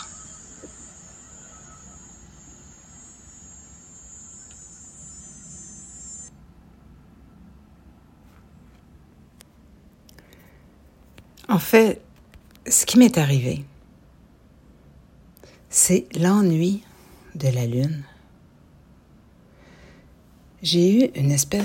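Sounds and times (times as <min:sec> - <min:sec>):
cicadas buzzing: 0:00.0 - 0:06.3
distant lawn mower running: 0:00.0 - 0:06.3
speech: 0:11.5 - 0:12.0, 0:12.7 - 0:13.7, 0:15.9 - 0:18.1, 0:20.6 - 0:21.6.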